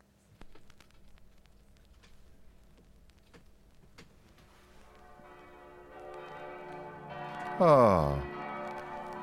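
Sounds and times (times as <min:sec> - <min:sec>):
crackly hissing record surface noise: 0:00.0 - 0:06.8
church bells ringing from a played record: 0:04.9 - 0:09.2
speech: 0:07.6 - 0:08.3.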